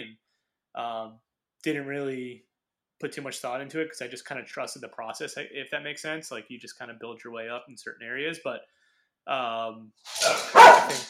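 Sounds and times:
speech: 0.8 - 11.0
female dog barking: 10.2 - 11.0.

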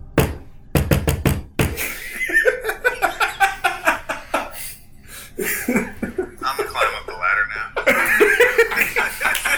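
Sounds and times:
sharp knocks imitating rapping on a door: 0.0 - 1.9
rhythmic laughter from people: 1.8 - 4.7, 5.4 - 9.5.

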